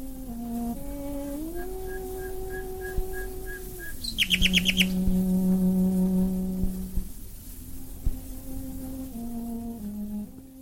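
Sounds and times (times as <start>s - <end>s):
hiss of an old 1920s recording: 0.0s - 10.6s
slow sustained cello-like tones: 0.0s - 10.6s
nightingales singing on an old 1920s recording: 1.2s - 5.4s.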